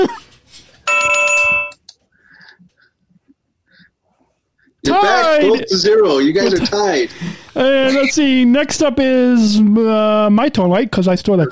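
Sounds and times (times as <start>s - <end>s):
electronic bell chime for a correct answer in a quiz game: 0.9s - 1.8s
speech: 5.0s - 11.5s.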